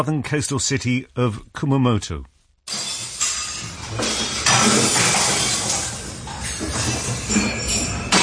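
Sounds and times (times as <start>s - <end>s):
speech: 0.0s - 2.3s, 7.3s - 7.6s
glasses and crockery smashing in earthquake: 2.7s - 8.2s
sharp bright clinks of breaking glass: 2.7s - 8.2s.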